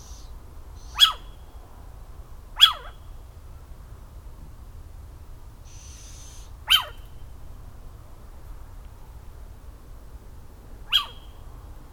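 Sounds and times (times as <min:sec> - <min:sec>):
barn owl calls: 0:00.0 - 0:01.5, 0:02.6 - 0:03.1, 0:05.7 - 0:07.2, 0:10.8 - 0:11.5.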